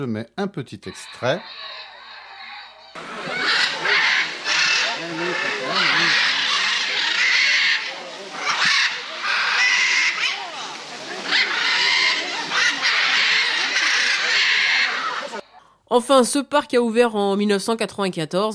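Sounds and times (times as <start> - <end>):
speech: 0.0 - 1.8, 5.0 - 6.4, 15.9 - 18.5
parrots squawking in a giant aviary at a bird park in Latin America: 0.8 - 15.5.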